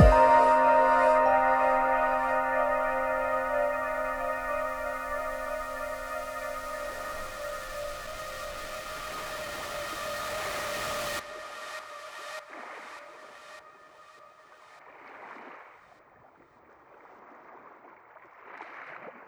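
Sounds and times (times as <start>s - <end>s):
tense synth pad: 0.0s - 14.8s.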